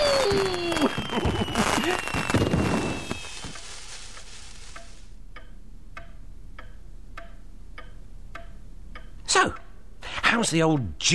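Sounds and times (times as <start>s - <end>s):
descending whistle of indoor fireworks: 0.0s - 3.8s
small indoor fireworks fizzing and crackling: 0.0s - 5.1s
speech: 10.4s - 11.1s.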